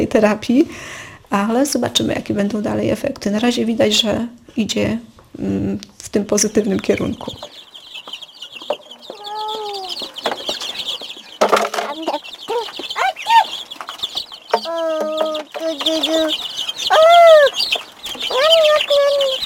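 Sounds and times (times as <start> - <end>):
speech: 0.0 - 7.6
steady high chirping hum from the surroundings: 0.9 - 19.4
chickens clucking: 1.4 - 4.3, 5.2 - 19.4
rooster clucking: 7.0 - 19.4.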